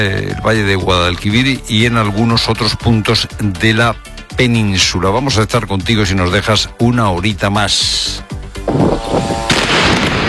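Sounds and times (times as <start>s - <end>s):
speech: 0.0s - 9.4s
gunfire exchanged at night: 9.5s - 10.2s.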